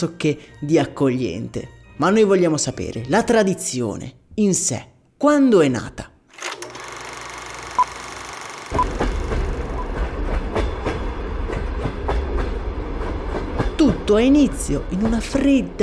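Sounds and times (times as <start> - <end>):
speech: 0.0 - 6.1, 14.1 - 15.8
train rolling on rails: 8.8 - 15.8.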